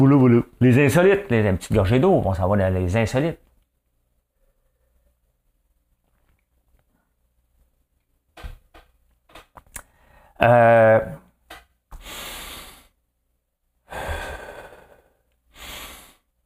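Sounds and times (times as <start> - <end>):
speech: 0.0 - 3.4, 10.4 - 11.2
slow deep breathing in and out: 4.3 - 5.3, 9.8 - 10.4, 11.9 - 13.1, 13.8 - 16.4.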